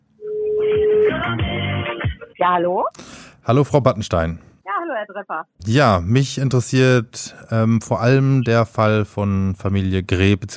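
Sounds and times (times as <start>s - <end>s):
telephone ringing tone over a phone line: 0.2s - 1.6s
speech: 2.4s - 10.5s.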